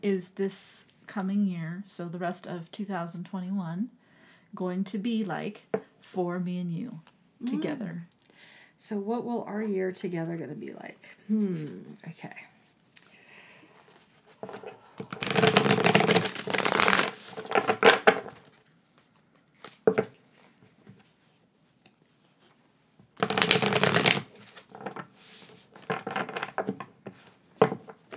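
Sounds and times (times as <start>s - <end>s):
speech: 0.0s - 8.2s, 8.8s - 12.5s, 14.4s - 15.8s
deck of cards being shuffled: 14.1s - 20.1s, 23.2s - 28.1s
soft taps and flicks of cards: 14.4s - 18.4s, 23.2s - 26.8s, 27.6s - 28.1s.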